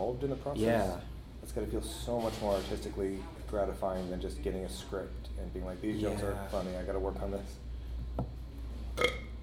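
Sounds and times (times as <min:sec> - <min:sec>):
speech: 0:00.0 - 0:07.7
person burping: 0:09.0 - 0:09.3.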